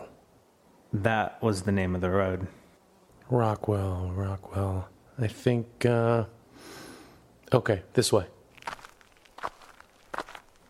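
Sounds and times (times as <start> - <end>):
speech: 0.9 - 2.6, 3.3 - 6.8, 7.5 - 8.4
faint shuffling: 8.5 - 10.6
footsteps of a limping person walking down a road: 8.5 - 10.6.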